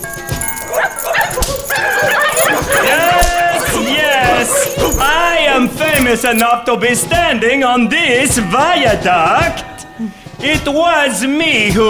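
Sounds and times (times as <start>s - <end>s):
sled team of Alaskan huskies barking and yipping: 0.0s - 6.5s
speech: 5.7s - 11.8s.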